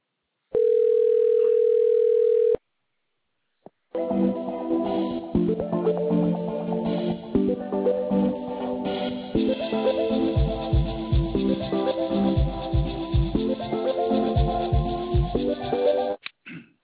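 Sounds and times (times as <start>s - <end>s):
telephone ringing tone as a call is transferred to an advisor: 0.6s - 2.6s
hold music: 4.0s - 16.2s.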